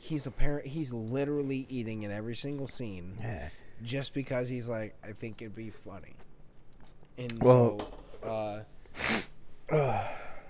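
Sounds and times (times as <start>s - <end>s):
speech: 0.1s - 6.3s, 7.2s - 10.2s
person sneezing: 9.0s - 10.3s.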